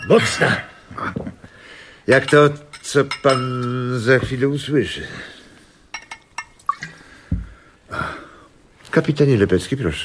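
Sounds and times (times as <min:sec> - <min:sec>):
light glassy taps and clinks: 0:00.0 - 0:00.6, 0:02.1 - 0:04.3, 0:05.9 - 0:06.9
speech: 0:00.1 - 0:01.2, 0:02.1 - 0:05.4, 0:08.9 - 0:10.0.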